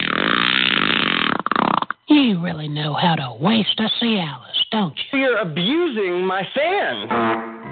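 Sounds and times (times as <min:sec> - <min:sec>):
long buzzy fart: 0:00.0 - 0:02.0
speech: 0:02.2 - 0:07.5.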